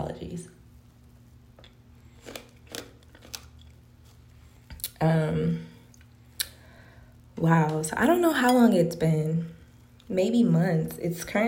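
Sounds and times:
crunchy bites and chewing of a pomegranate in a bathtub: 0:02.0 - 0:03.8
speech: 0:05.0 - 0:05.7, 0:07.4 - 0:11.4.

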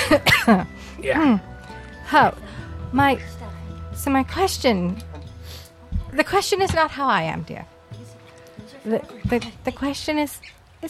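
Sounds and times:
giggling snort turning into a cough: 0:00.0 - 0:00.7
speech: 0:00.1 - 0:01.5, 0:02.1 - 0:03.4, 0:04.0 - 0:05.1, 0:06.1 - 0:07.7, 0:08.8 - 0:10.8.

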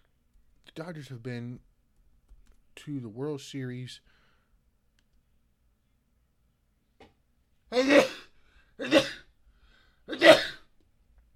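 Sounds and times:
speech: 0:00.8 - 0:01.7, 0:02.8 - 0:04.2
person sneezing: 0:07.7 - 0:09.3, 0:10.1 - 0:10.7.

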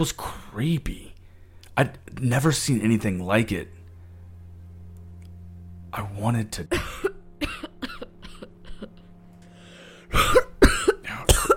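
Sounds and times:
speech: 0:00.0 - 0:01.1, 0:01.8 - 0:03.8, 0:05.9 - 0:07.1
low steady hum: 0:00.0 - 0:11.5
woman coughing: 0:06.7 - 0:08.9, 0:10.1 - 0:11.5.

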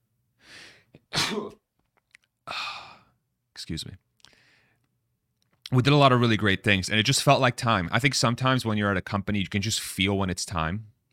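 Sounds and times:
person sneezing: 0:01.0 - 0:01.6
speech: 0:01.3 - 0:01.6, 0:03.6 - 0:04.1, 0:05.7 - 0:11.1.

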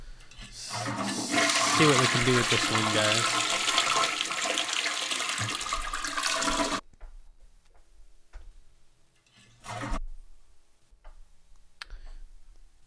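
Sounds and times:
loud toilet flush: 0:00.4 - 0:06.8
water trickling as the toilet tank refills: 0:00.7 - 0:06.8
bursts of water noise as the tank refills: 0:01.4 - 0:06.8
speech: 0:01.8 - 0:03.4, 0:05.4 - 0:05.7.

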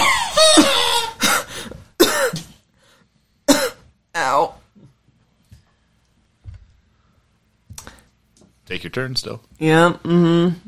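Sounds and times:
person imitating a harsh coughing fit of a poisoned character: 0:00.0 - 0:02.6, 0:03.5 - 0:03.9
speech: 0:08.8 - 0:10.6.

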